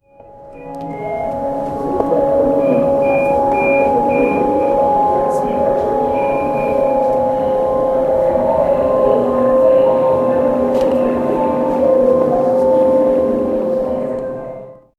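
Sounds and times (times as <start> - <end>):
soft airport background sound: 0.0 - 14.7.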